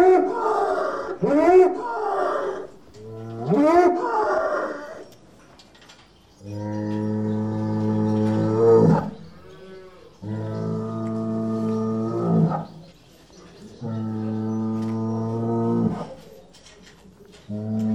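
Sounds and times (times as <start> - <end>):
adult bull bellowing: 0.0 - 5.1, 6.5 - 12.7, 13.8 - 16.2, 17.5 - 17.9.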